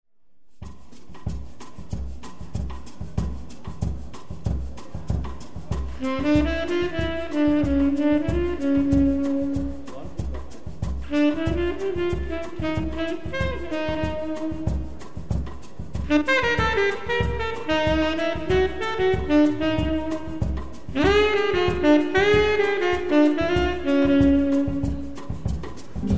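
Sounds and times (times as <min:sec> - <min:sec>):
bossa nova played by a trio with saxophone: 0:00.8 - 0:26.1.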